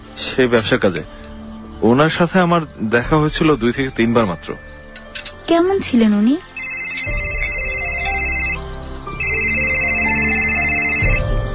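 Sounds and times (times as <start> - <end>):
speech: 0.4 - 1.2, 1.8 - 7.2
phone electronic ringtone: 6.6 - 11.3.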